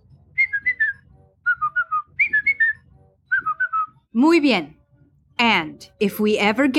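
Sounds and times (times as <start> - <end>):
whistled family signal tune of four quick notes: 0.2 - 4.0
speech: 4.2 - 4.8, 5.4 - 6.7.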